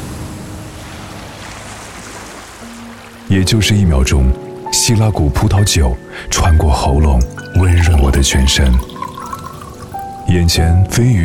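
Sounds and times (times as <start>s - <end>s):
ocean waves crashing onto rocks: 0.0s - 3.3s
speech: 3.4s - 9.0s, 10.3s - 11.2s.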